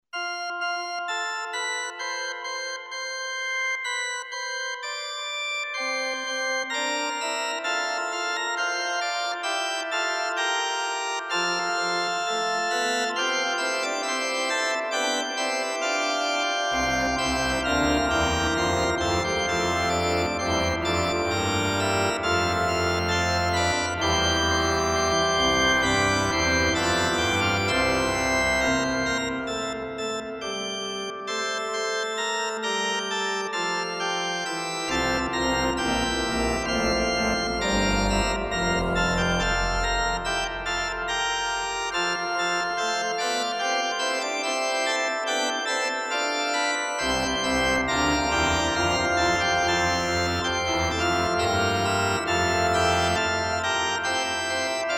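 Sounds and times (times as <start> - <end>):
organ playing a fugue on bass bombarde stop: 0.2 - 54.9.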